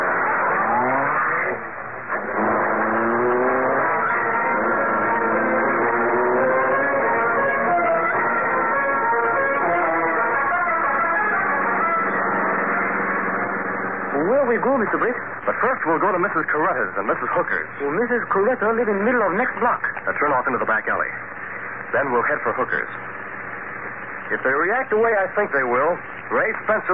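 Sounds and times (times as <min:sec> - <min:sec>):
car engine roaring to life and revving as it accelerates away: 0:00.0 - 0:16.8
speech: 0:15.0 - 0:23.2, 0:24.3 - 0:26.9.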